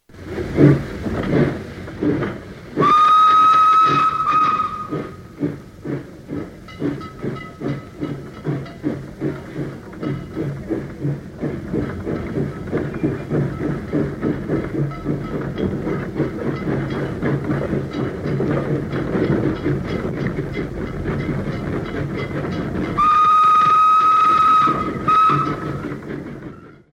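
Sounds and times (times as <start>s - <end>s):
train departing on railway track: 0.0s - 26.9s.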